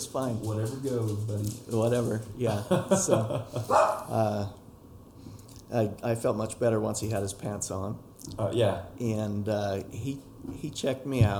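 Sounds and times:
speech: 0:00.1 - 0:04.6, 0:05.7 - 0:11.3
person laughing: 0:02.5 - 0:03.8
dogs barking: 0:03.6 - 0:04.2.

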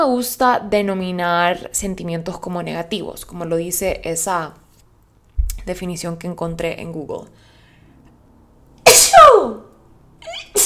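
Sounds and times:
speech: 0:00.0 - 0:04.6, 0:05.6 - 0:07.5, 0:08.9 - 0:09.6
loud sneeze: 0:08.8 - 0:09.7, 0:10.5 - 0:10.6.

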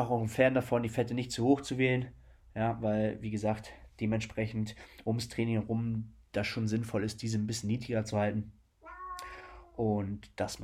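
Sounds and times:
speech: 0:00.0 - 0:08.6, 0:09.8 - 0:10.6
cat meowing: 0:08.8 - 0:09.8.

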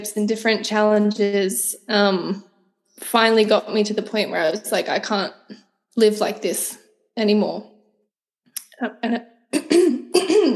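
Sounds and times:
speech: 0:00.0 - 0:07.7, 0:08.8 - 0:09.3
person clearing throat: 0:09.6 - 0:10.5.

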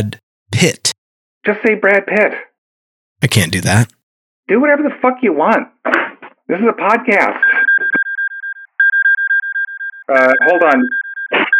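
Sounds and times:
speech: 0:00.0 - 0:02.5, 0:03.2 - 0:07.9, 0:10.1 - 0:11.4
phone alarm beeping: 0:07.4 - 0:11.5.

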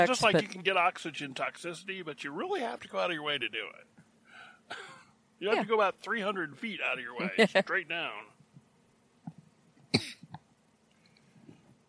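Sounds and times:
speech: 0:00.0 - 0:03.9, 0:04.7 - 0:08.3
single sharp cough: 0:04.7 - 0:05.1, 0:10.0 - 0:10.3.

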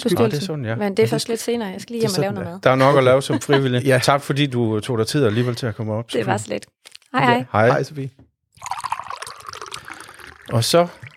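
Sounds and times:
speech: 0:00.0 - 0:08.9, 0:10.5 - 0:11.1
laughter: 0:02.7 - 0:04.1, 0:05.2 - 0:05.8
water pouring into a mug: 0:08.6 - 0:11.1.

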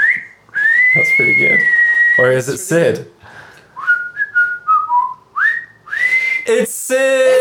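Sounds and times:
person whistling a short melodic tune: 0:00.0 - 0:02.3, 0:03.8 - 0:06.5
speech: 0:01.0 - 0:03.4, 0:06.5 - 0:07.3.

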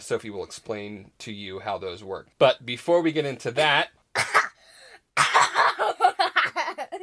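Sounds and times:
speech: 0:00.0 - 0:04.0
child getting over a cold coughing: 0:04.2 - 0:04.6, 0:05.2 - 0:06.0.

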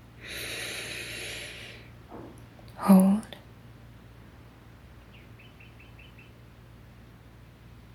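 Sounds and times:
deep breath in during a guided breathing exercise: 0:00.2 - 0:01.9
speech: 0:02.8 - 0:03.1.

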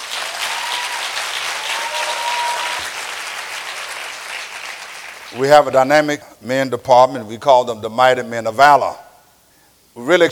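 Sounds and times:
crowd in a large room applauding: 0:00.0 - 0:05.4
speech: 0:05.4 - 0:09.0, 0:10.0 - 0:10.3.

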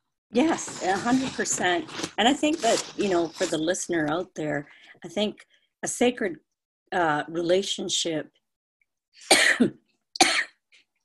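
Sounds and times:
speech: 0:00.3 - 0:08.4, 0:09.2 - 0:09.8
horrible harsh cough: 0:09.3 - 0:10.6.

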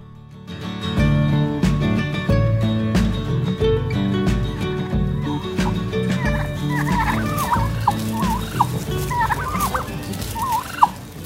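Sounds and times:
steady rhythmic music bed: 0:00.9 - 0:11.2
wild turkeys gobbling in Central Michigan: 0:05.1 - 0:11.2.

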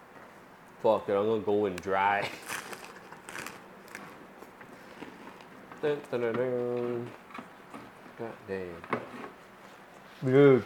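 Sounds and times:
speech: 0:00.8 - 0:02.5, 0:05.8 - 0:07.2, 0:08.2 - 0:09.2, 0:10.2 - 0:10.6
person biting and chewing crisp fried lumpia: 0:02.4 - 0:04.1.

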